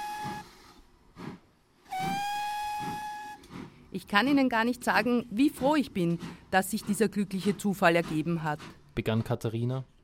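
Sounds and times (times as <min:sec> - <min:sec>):
shrill steam locomotive whistle: 0:00.0 - 0:00.7, 0:01.9 - 0:03.4
steam locomotive chuffing as it gets under way: 0:00.0 - 0:09.0
speech: 0:03.9 - 0:09.9.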